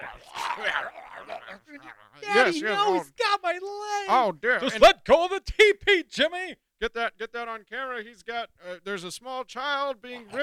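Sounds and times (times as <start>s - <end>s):
wolves growling and snarling: 0.0s - 2.2s
speech: 0.2s - 10.4s.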